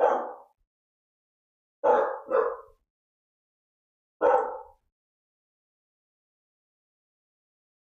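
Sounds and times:
dogs barking: 0.0 - 0.6, 1.8 - 2.8, 4.2 - 4.8.

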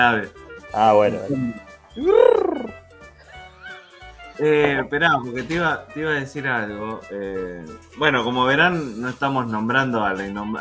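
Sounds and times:
speech: 0.0 - 2.5, 4.4 - 10.6
pigeon cooing: 1.3 - 2.8
softer low murmuring: 1.3 - 2.8.

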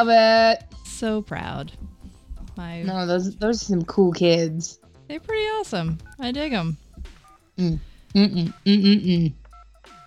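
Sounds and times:
speech: 0.0 - 2.0, 2.6 - 6.8, 7.6 - 10.0
telephone dialing tones: 5.6 - 7.4.

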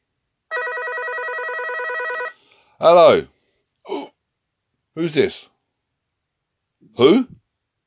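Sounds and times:
telephone ringing with bright warbling bell tone: 0.5 - 2.4
speech: 2.8 - 3.3, 5.0 - 5.5, 6.9 - 7.4.

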